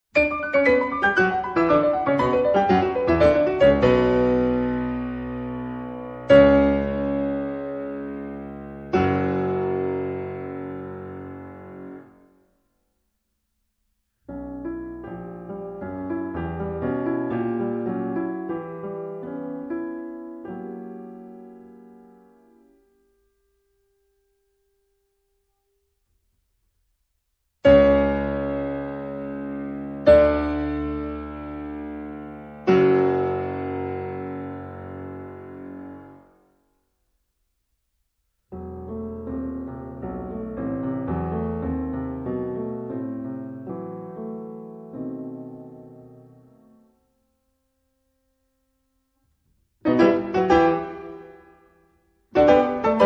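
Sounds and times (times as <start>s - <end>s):
allegro piano piece played by a female concert pianist: 0.1s - 12.4s, 14.3s - 23.6s, 27.6s - 36.4s, 38.5s - 47.0s, 49.8s - 53.0s.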